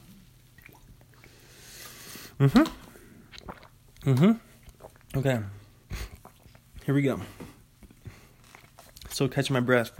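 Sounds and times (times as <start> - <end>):
person slurping and sipping a drink: 0.1 - 5.2, 5.9 - 6.7, 7.9 - 9.2
speech: 2.4 - 2.8, 4.0 - 4.5, 5.2 - 5.6, 6.9 - 7.4, 9.2 - 9.9.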